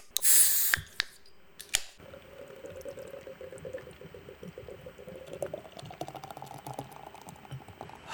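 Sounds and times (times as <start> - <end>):
can of Guinness snapping open with a sharp hiss: 0.0 - 2.0
Guinness pouring into a glass, gurgling and fizzing: 2.0 - 8.1.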